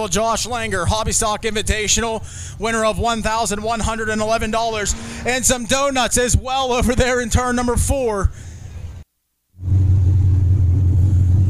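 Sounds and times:
speech: 0.0 - 8.4
overheating hobby stock race car engine running in victory lane: 0.0 - 9.0, 9.6 - 11.4.

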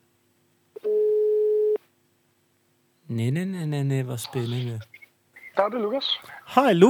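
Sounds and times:
telephone ringback tone during outgoing call: 0.8 - 1.8
speech: 3.1 - 5.0, 5.6 - 6.8.

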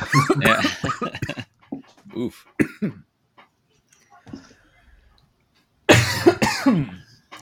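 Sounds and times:
person coughing after choking on water: 0.0 - 1.5, 2.6 - 3.1, 5.9 - 7.1
laughter: 0.0 - 1.6
speech: 0.1 - 0.8, 2.2 - 2.9.

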